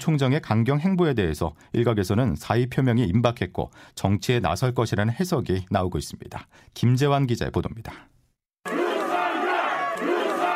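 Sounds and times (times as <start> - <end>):
speech: 0.0 - 8.1
crowd of supporters chanting a name in loud unison: 8.7 - 10.5.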